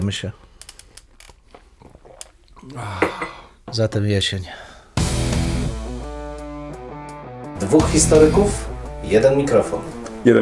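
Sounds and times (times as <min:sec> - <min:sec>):
speech: 0:00.0 - 0:00.5, 0:02.6 - 0:04.7, 0:07.6 - 0:10.4
soft mouth clicks: 0:00.6 - 0:02.8.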